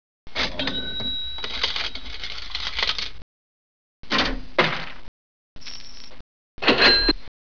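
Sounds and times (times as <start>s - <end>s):
old cash register: 0.4s - 3.2s, 6.6s - 7.2s.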